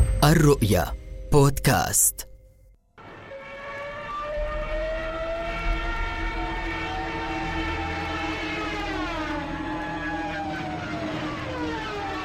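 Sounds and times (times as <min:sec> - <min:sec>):
speech: 0:00.2 - 0:02.3
German Stuka dive bomber wailing drone in flight: 0:03.1 - 0:12.2.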